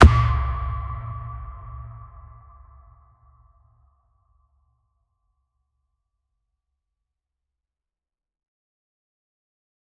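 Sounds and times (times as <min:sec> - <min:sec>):
dynamic impact: 0:00.0 - 0:02.9.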